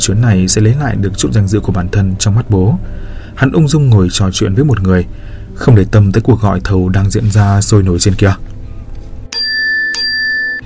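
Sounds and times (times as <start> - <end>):
speech: 0.0 - 8.5
notification bell signalling end of a bidding call: 9.3 - 10.6.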